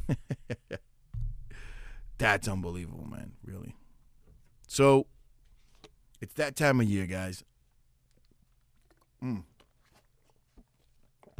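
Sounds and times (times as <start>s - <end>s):
low hum in a quiet room: 1.1s - 5.6s
speech: 2.2s - 3.4s, 4.7s - 5.1s, 6.2s - 7.5s, 9.2s - 9.5s
person sipping and swallowing water: 7.7s - 11.3s
faint mouth noises: 8.0s - 11.3s.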